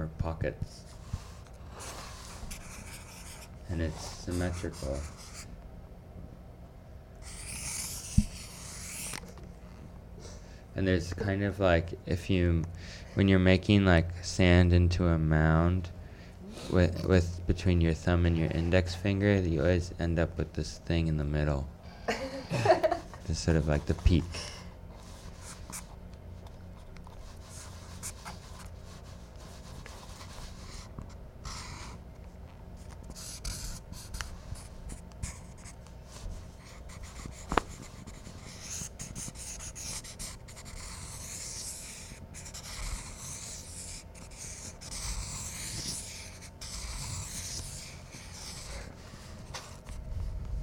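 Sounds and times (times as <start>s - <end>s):
speech: 0.3s - 1.0s, 3.7s - 5.2s, 10.8s - 16.0s, 16.6s - 24.5s
pencil scratching and scribbling across paper: 1.8s - 5.5s, 7.2s - 9.2s, 33.1s - 35.8s, 36.6s - 49.9s.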